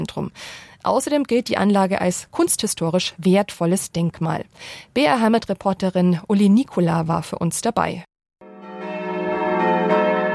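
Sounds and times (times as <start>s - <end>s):
speech: 0.0s - 8.1s
church bells pealing at a Benedictine abbey: 8.4s - 10.3s.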